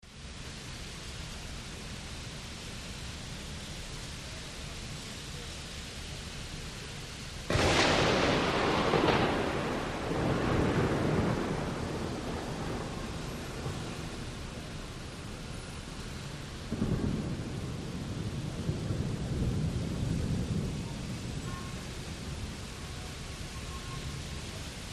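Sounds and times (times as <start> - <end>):
heavy rain in a city storm: 0.0 - 24.9
wet city traffic: 0.4 - 24.9
thunder: 7.5 - 24.6.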